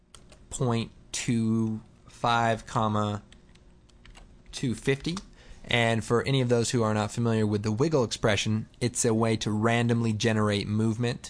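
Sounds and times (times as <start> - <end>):
speech: 0.5 - 3.3, 4.6 - 11.2
typing on a computer keyboard: 3.3 - 4.3.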